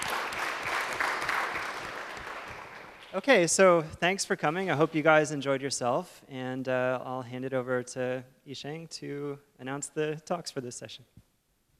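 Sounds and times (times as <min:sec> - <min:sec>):
conference audience applauding: 0:00.0 - 0:03.6
speech: 0:03.1 - 0:11.2.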